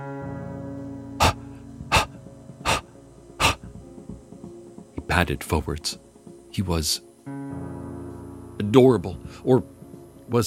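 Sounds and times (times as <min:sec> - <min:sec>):
beagle puppy panting: 0:01.2 - 0:03.8
speech: 0:05.1 - 0:07.1, 0:08.7 - 0:09.7, 0:10.3 - 0:10.4.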